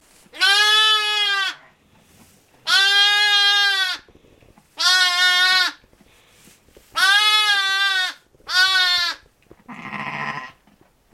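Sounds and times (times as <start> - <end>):
ewe: 0.3 - 1.8, 2.6 - 10.7
lamb wailing: 0.4 - 1.6, 2.7 - 4.1, 4.8 - 5.8, 7.0 - 10.6.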